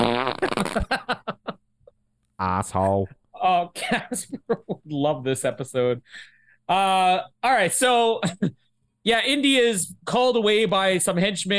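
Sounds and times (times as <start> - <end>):
loud fart: 0.0 - 0.9
speech: 0.4 - 1.0, 2.4 - 11.5
laughter: 0.5 - 1.6.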